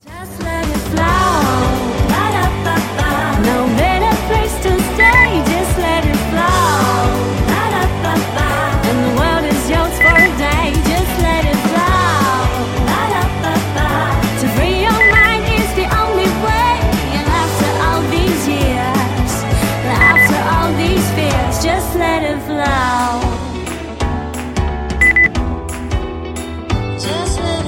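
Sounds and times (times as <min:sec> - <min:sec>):
person singing: 0:00.0 - 0:23.9, 0:27.0 - 0:27.6
beep: 0:05.0 - 0:05.3, 0:10.0 - 0:10.3, 0:15.0 - 0:15.4, 0:20.0 - 0:20.3, 0:25.0 - 0:25.3.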